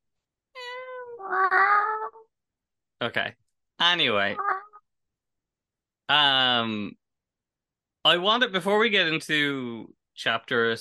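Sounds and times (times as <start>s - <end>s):
person imitating a cat meow: 0.6s - 2.3s, 4.2s - 4.8s
speech: 1.3s - 1.7s, 3.0s - 4.5s, 6.1s - 7.0s, 8.0s - 10.8s.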